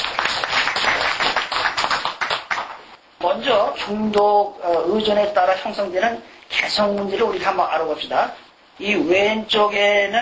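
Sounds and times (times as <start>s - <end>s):
crowd applauding: 0.0s - 2.8s
speech: 3.3s - 10.1s.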